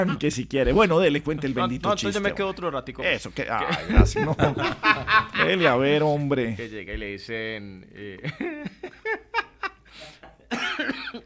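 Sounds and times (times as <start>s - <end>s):
speech: 0.0s - 9.4s
laughter: 3.6s - 6.0s, 8.2s - 9.9s
person having a loud coughing fit in a studio: 10.5s - 11.2s.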